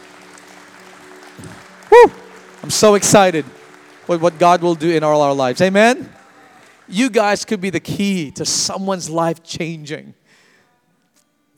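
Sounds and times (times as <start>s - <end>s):
crowd of people clapping: 0.0s - 8.2s
speech: 1.4s - 6.2s, 6.9s - 10.2s.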